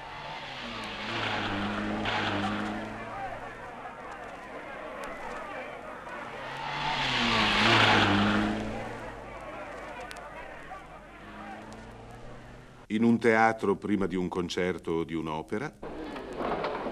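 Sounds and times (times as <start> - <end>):
race cars roaring past at a motor race: 0.0 - 12.9
noise: 0.0 - 16.8
speech: 13.0 - 15.8.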